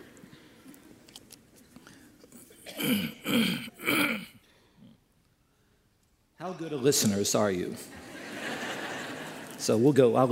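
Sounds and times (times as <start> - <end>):
person clearing throat: 2.4 - 4.4
speech: 2.8 - 4.0, 6.6 - 8.0, 9.6 - 10.3
laughter: 7.8 - 9.6.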